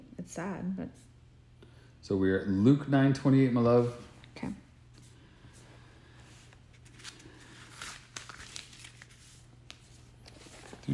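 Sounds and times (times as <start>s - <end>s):
low steady hum: 0.0s - 10.9s
speech: 0.3s - 1.1s, 2.0s - 4.6s
thin pages of a Bible being turned: 6.3s - 10.9s.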